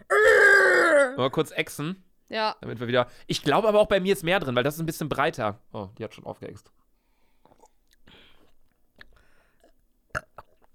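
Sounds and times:
person attempting to burp after downing a drink from a glass: 0.0s - 1.2s, 9.6s - 10.7s
speech: 1.2s - 6.8s.

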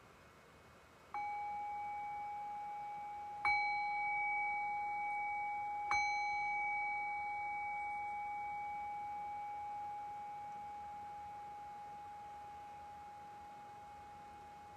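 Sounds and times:
meditation bell struck to close a guided meditation: 1.2s - 14.7s.

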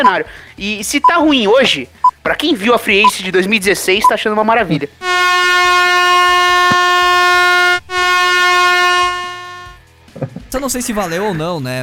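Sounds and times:
speech: 0.0s - 5.4s, 10.6s - 11.8s
air horn blaring: 5.0s - 9.8s.

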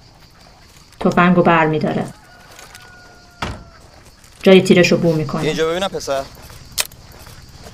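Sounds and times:
speech: 1.0s - 2.2s, 4.4s - 6.5s
car door opening with a metallic clunk: 3.4s - 3.8s.

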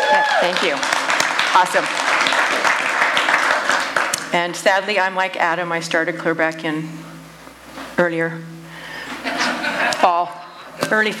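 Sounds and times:
audience clapping hands: 0.0s - 4.3s
speech: 0.2s - 2.8s, 4.3s - 7.0s, 8.0s - 8.5s, 10.0s - 11.1s
laughter: 9.1s - 10.2s.

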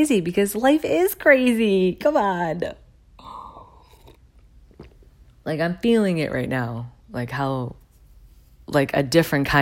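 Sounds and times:
speech: 0.0s - 2.8s, 5.5s - 7.8s, 8.7s - 9.6s
person slurping hot coffee: 3.7s - 5.0s.

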